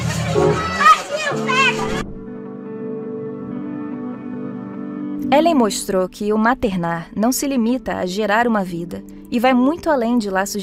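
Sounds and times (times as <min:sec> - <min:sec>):
children at play chattering and calling out: 0:00.0 - 0:02.1
speech: 0:05.3 - 0:10.6.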